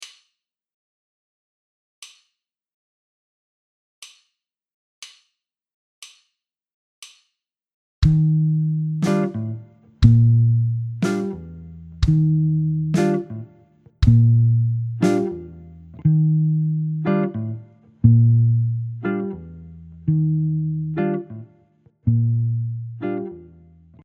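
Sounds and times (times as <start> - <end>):
jazz guitar ballad figure: 8.2 - 19.5, 20.1 - 21.5.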